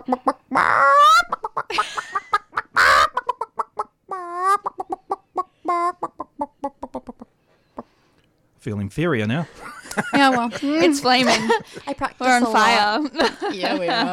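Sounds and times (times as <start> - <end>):
speech: 0.0 - 0.6, 8.9 - 14.1
person imitating chicken clucks and squawks: 0.0 - 1.7, 2.7 - 7.3
laughter: 9.3 - 12.2, 12.8 - 14.1.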